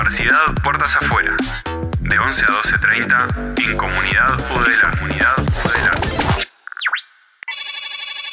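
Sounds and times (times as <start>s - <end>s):
speech: 0.1s - 6.4s
electronic telephone ringtone for an incoming call: 6.8s - 8.3s.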